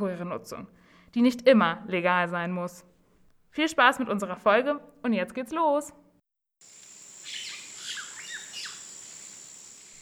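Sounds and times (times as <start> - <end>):
speech: 0.0 - 2.9, 3.5 - 6.0
grasshoppers chirring: 6.6 - 10.0.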